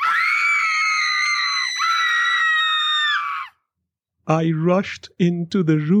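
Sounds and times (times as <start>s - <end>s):
person shrieking in terror: 0.0s - 3.6s
speech: 4.3s - 5.9s.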